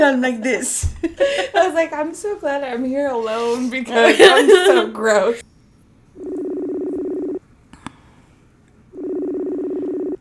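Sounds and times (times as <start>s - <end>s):
speech: 0.0s - 5.5s
laughter: 1.0s - 1.9s, 3.5s - 5.4s
telephone ring tones on a call line: 6.1s - 7.4s, 8.9s - 10.1s.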